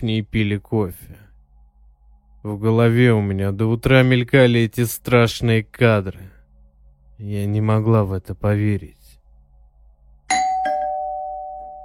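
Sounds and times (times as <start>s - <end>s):
speech: 0.0s - 1.2s, 2.4s - 6.4s, 7.2s - 9.0s
faint low hum: 0.0s - 11.8s
doorbell two-note ding-dong chime: 10.3s - 11.8s.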